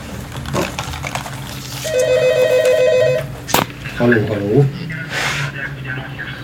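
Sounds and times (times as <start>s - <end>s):
telephone ringing with a bright warble: 1.8s - 3.4s
people talking: 3.8s - 6.4s.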